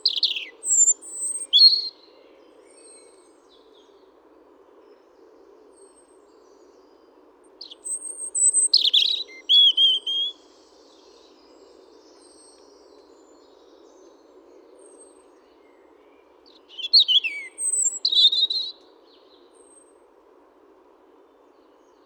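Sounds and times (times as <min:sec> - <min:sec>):
European robin Erithacus rubecula singing: 0:00.0 - 0:02.0, 0:07.6 - 0:10.4, 0:16.5 - 0:18.8.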